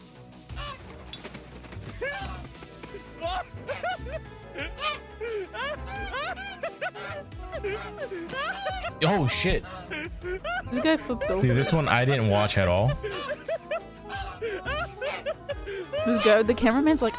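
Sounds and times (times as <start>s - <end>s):
geese honking while chasing people: 0.5s - 1.1s, 5.6s - 9.0s, 11.4s - 15.3s, 16.0s - 17.1s
laughter: 2.0s - 17.1s
speech: 7.8s - 13.3s, 16.1s - 17.1s.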